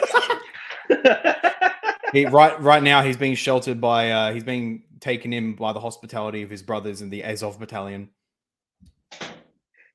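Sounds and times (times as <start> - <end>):
laughter: 0.0 - 3.0
speech: 2.1 - 8.2
door slamming shut: 9.1 - 9.5.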